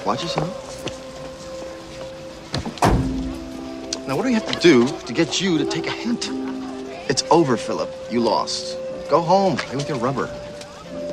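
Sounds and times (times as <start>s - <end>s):
speech: 0.0s - 1.0s, 4.1s - 6.5s, 7.1s - 10.5s
car door opening: 2.6s - 3.5s.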